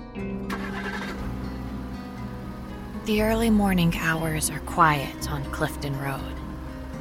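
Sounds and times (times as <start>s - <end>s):
car engine starting and idling: 0.4s - 6.9s
speech: 3.1s - 6.4s.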